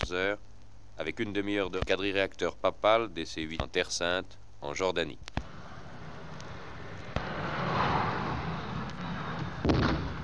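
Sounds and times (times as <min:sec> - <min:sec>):
speech: 0:00.1 - 0:05.4
cannon shots fired in salute: 0:05.4 - 0:10.2
steady roar of strong wind: 0:05.4 - 0:10.2.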